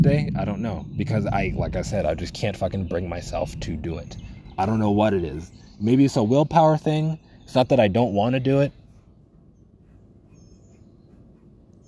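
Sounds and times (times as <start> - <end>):
steady rushing noise: 0.0 - 5.4
speech: 0.0 - 8.8
several birds calling outside: 0.0 - 11.8.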